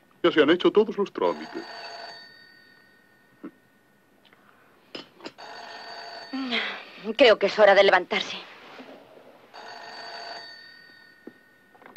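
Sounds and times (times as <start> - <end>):
speech: 0.2 - 1.9, 7.1 - 8.5
old-style telephone bell ringing: 1.2 - 4.1, 5.3 - 6.9, 9.5 - 11.9.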